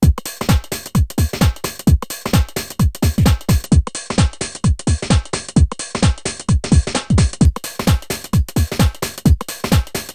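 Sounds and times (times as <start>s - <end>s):
drum: 0.0s - 10.1s.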